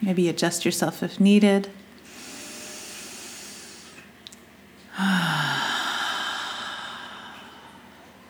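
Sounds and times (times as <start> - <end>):
speech: 0.0 - 1.8
slow deep breathing during a guided relaxation exercise: 2.1 - 4.0, 4.9 - 8.0.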